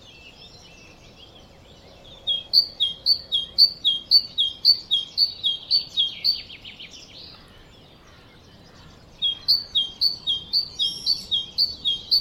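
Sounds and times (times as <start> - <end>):
great tit Parus major singing: 0.0 - 12.1.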